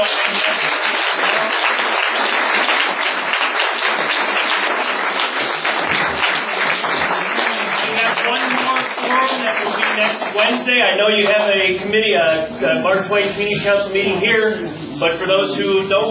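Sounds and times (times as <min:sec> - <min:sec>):
audience applause after a speech at a community meeting: 0:00.0 - 0:11.4
speech: 0:10.1 - 0:16.0.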